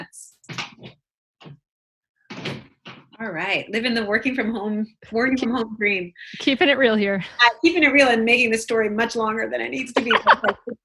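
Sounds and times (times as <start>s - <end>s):
door closing: 2.3s - 3.2s
speech: 3.2s - 10.8s
laughter: 10.0s - 10.8s.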